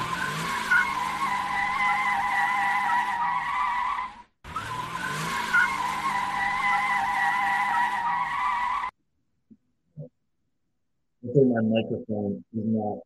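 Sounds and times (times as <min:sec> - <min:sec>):
car tires squealing: 0:00.0 - 0:08.9
speech: 0:11.4 - 0:13.0.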